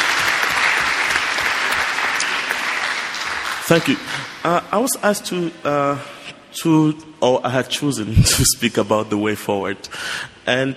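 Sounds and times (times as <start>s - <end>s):
audience applauding loudly: 0.0s - 4.5s
speech: 3.7s - 10.7s.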